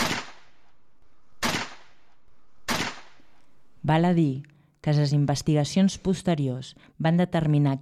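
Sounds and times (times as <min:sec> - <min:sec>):
pistol shots with tail: 0:00.0 - 0:00.6, 0:01.4 - 0:02.0, 0:02.6 - 0:03.3
speech: 0:03.9 - 0:07.7.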